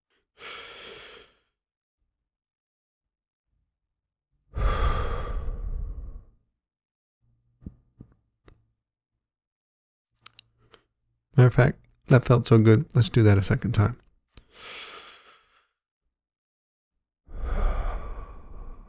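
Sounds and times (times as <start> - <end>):
deep inhale during a guided relaxation exercise: 0.4 - 1.6, 4.5 - 6.4, 14.5 - 15.8, 17.3 - 18.8
relaxing exhale: 4.5 - 6.4, 14.5 - 15.7, 17.3 - 18.8
speech: 11.4 - 14.0.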